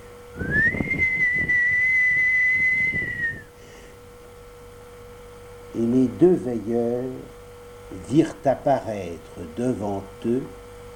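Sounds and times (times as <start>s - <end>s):
faint low rumbling: 0.3s - 3.5s
whistle blast at midnight beside a fresh grave: 0.4s - 3.5s
speech: 6.2s - 10.6s.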